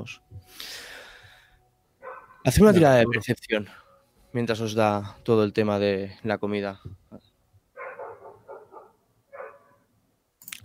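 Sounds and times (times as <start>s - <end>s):
speech: 0.0s - 0.9s, 2.4s - 7.3s
wolves howling in the distance: 7.8s - 9.8s.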